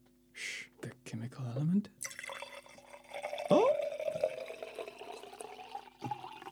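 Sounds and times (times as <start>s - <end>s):
speech: 1.1s - 2.1s
water pouring with a bubbling trickling texture: 2.0s - 6.5s.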